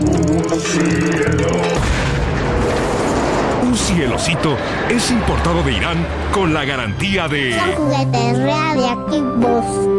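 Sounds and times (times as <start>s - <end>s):
speech: 0.4s - 1.7s, 3.7s - 9.9s
nuclear explosion boom: 1.7s - 4.0s.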